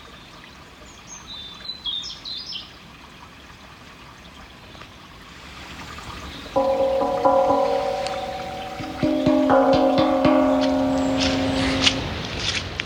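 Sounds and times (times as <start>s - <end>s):
running water trickling: 0.0s - 12.8s
clear ringing bell-like tones: 6.6s - 12.1s.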